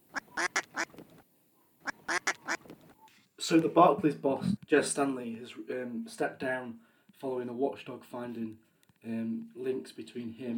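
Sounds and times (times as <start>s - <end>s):
duck quacking: 0.0s - 1.0s, 1.8s - 2.6s
speech: 3.5s - 10.5s.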